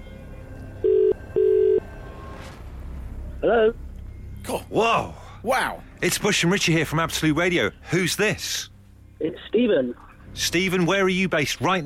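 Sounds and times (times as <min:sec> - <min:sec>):
telephone ringing tone over the line: 0:00.8 - 0:01.9
speech: 0:03.4 - 0:03.8, 0:04.5 - 0:11.8.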